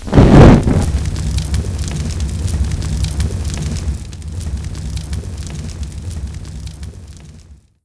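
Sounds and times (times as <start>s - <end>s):
firebomb exploding: 0.0s - 7.6s.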